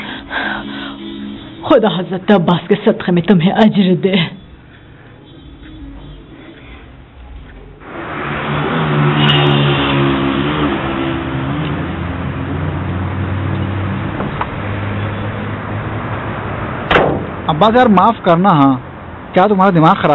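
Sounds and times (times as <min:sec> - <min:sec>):
speech: 0:01.7 - 0:04.4, 0:17.6 - 0:18.8, 0:19.4 - 0:20.1
car engine revving then idling: 0:07.8 - 0:17.6.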